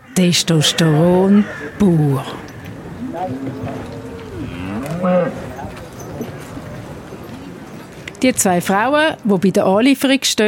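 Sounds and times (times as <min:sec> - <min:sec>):
noise at a cattle market: 0:00.0 - 0:10.4
speech: 0:00.2 - 0:02.5, 0:03.2 - 0:05.5, 0:08.2 - 0:10.4
bulls mooing at a cattle market: 0:00.4 - 0:07.8.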